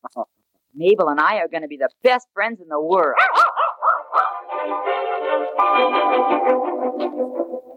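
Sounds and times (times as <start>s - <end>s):
speech: 0.8s - 3.6s, 5.6s - 7.5s
mixed-breed puppy yapping and barking: 3.1s - 4.5s.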